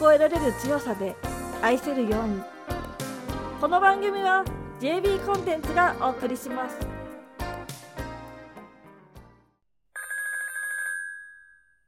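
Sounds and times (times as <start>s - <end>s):
speech: 0.0s - 2.5s, 3.6s - 6.9s
telephone ringing with a bright bell-like ring: 10.0s - 11.8s.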